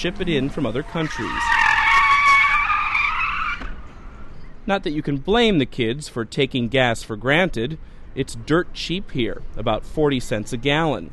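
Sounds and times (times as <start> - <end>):
speech: 0.0 - 1.6, 4.7 - 11.1
car tyres skidding and squealing while burning rubber on a waterfront: 0.0 - 4.5.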